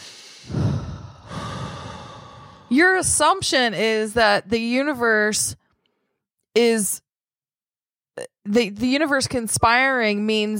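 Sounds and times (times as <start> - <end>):
deep breath drawn in and let out as a long breathy sigh: 0.0 - 2.7
speech: 2.7 - 5.6, 6.6 - 7.0, 8.2 - 10.5.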